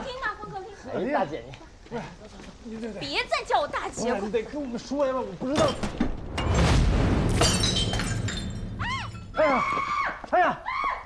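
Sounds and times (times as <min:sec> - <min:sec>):
speech: 0:00.9 - 0:06.1, 0:09.4 - 0:10.6
ceramic shards scattering: 0:05.6 - 0:09.4
large ceramic vase crashing to the floor and shattering: 0:05.6 - 0:09.4
high wavering exclamatory vocal cries: 0:08.8 - 0:11.0.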